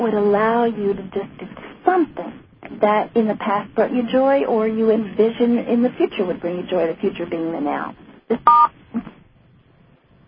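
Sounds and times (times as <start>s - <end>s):
speech: 0.0s - 8.8s
two-tone telephone beep marking incoming callers: 8.4s - 8.8s.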